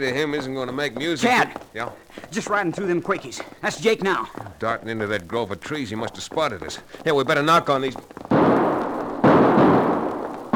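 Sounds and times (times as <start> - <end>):
speech: 0.0 - 8.2
gunshots fired from a grove of aspen trees: 8.2 - 10.5.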